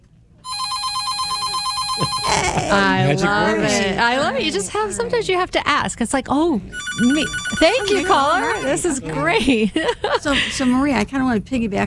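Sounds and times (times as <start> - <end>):
telephone ringing with a warbling electronic ring for an incoming call: 0.5 - 2.5, 6.7 - 9.1
laughter: 1.8 - 5.4, 7.1 - 10.8
speech: 2.6 - 11.8.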